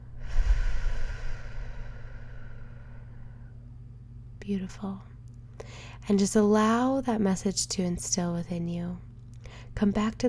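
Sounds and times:
deep breath in and out during a guided breathing exercise: 0.0 - 3.6
speech: 4.5 - 9.1, 9.8 - 10.2.

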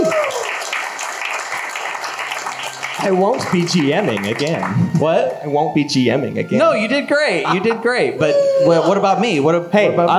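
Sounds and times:
crowd applauding: 0.0 - 5.4
speech: 3.0 - 10.1.

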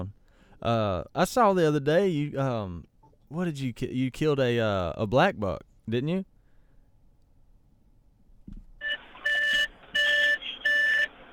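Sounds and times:
speech: 0.0 - 6.3
car Bluetooth connection chime as the phone connects: 8.8 - 11.3.

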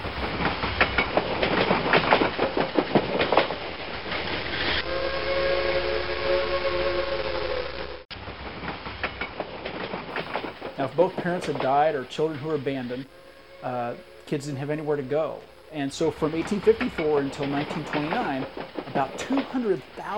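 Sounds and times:
train clattering along rails: 0.0 - 4.8, 8.2 - 20.1
train whistle: 4.7 - 8.0, 12.0 - 20.1
speech: 11.0 - 20.1.

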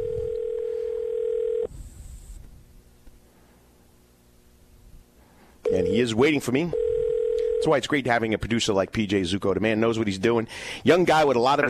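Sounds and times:
loud telephone dial tone: 0.0 - 1.7, 5.6 - 6.0, 6.7 - 7.7
faint telephone line hiss and low static: 0.0 - 11.6
speech: 5.8 - 6.8, 7.6 - 11.6.

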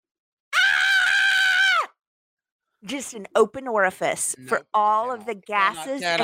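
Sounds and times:
person screaming: 0.5 - 2.0
speech: 2.8 - 6.2.

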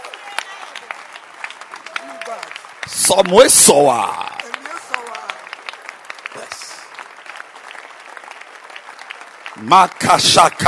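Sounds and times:
crowd noise and voices: 0.0 - 10.6
hands clapping at a gathering: 0.0 - 10.6
speech: 2.9 - 4.3, 9.6 - 10.6.

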